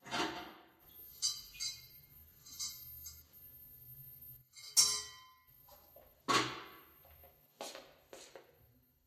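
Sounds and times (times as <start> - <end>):
kitchen and bar ambience: 0.0 - 3.6, 4.4 - 9.0.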